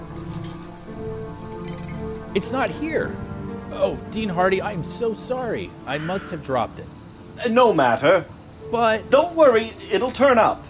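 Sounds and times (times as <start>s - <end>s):
keys jingling: 0.0s - 2.4s
speech: 2.3s - 10.6s.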